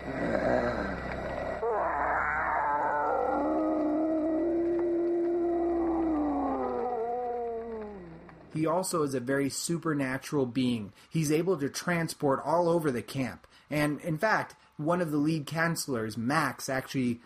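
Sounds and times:
deep guttural voice of movie villain grunting and growling: 0.0 - 8.5
speech: 8.6 - 17.2.

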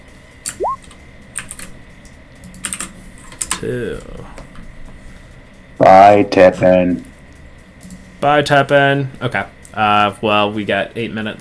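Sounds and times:
brief rising chirp: 0.6 - 0.8
typing on a computer keyboard: 1.4 - 1.7, 2.5 - 2.9
speech: 3.6 - 4.4, 6.0 - 7.1, 8.2 - 11.3.

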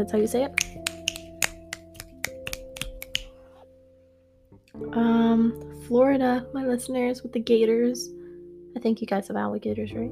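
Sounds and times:
speech: 0.0 - 0.8, 4.8 - 10.1
soft sustained music: 0.0 - 10.1
crisp finger snaps: 0.6 - 3.4.

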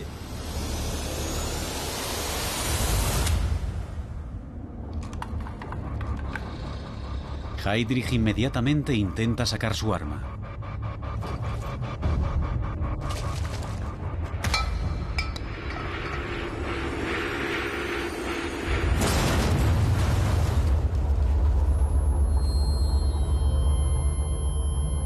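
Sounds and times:
steady roaring noise: 0.0 - 25.0
thin high whining tones: 5.1 - 19.9, 21.3 - 25.0
speech: 7.6 - 10.4
bomb exploding beside a car: 16.4 - 22.4.

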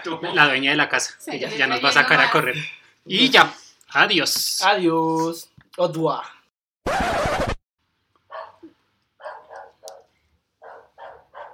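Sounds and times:
speech: 0.0 - 7.3
dog barking: 8.3 - 11.5.

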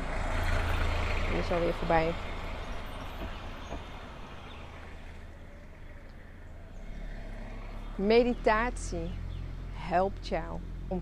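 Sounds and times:
car driving past: 0.0 - 11.0
speech: 1.3 - 2.3, 8.0 - 9.2, 9.8 - 11.0.

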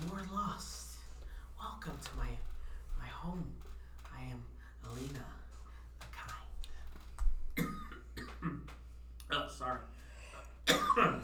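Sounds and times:
low hum: 0.0 - 11.2
person coughing in short rough bursts: 7.6 - 8.7, 10.6 - 11.2
person clearing throat: 7.6 - 8.8, 10.7 - 11.2
speech: 10.7 - 11.2.

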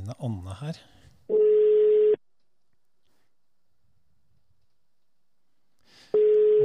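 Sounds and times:
speech: 0.1 - 1.4
telephone ringback tone while dialing: 1.3 - 2.2, 6.2 - 6.6.

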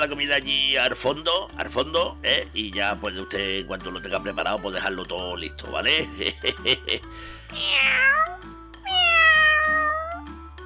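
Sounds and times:
speech: 0.0 - 8.4
laughter: 6.0 - 7.1
cat meowing: 7.5 - 10.4.

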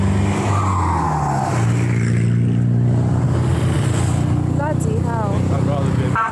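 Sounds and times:
ambulance engine drone speeding by on a road in Suesca Colombia: 0.0 - 6.3
voices: 4.6 - 6.3.

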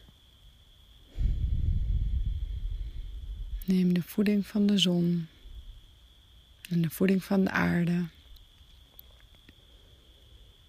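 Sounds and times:
deep breathing during a guided meditation: 1.1 - 3.6
speech: 3.7 - 5.4, 6.7 - 8.2.

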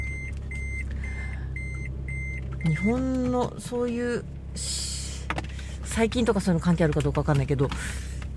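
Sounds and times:
high electronic beep: 0.0 - 0.9, 1.6 - 3.0
car engine rumble in the cabin during slow maneuvering: 0.0 - 8.3
speech: 2.6 - 4.9, 6.0 - 8.1.

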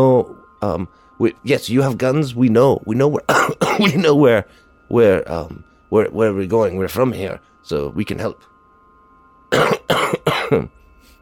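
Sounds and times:
speech: 0.0 - 8.5, 9.5 - 10.8
quiet hum: 0.0 - 11.2
several people coughing: 3.3 - 4.2, 9.5 - 10.7.

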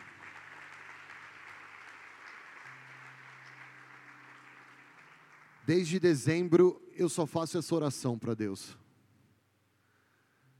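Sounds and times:
audience applauding after a prayer: 0.0 - 6.5
speech: 5.7 - 8.8.

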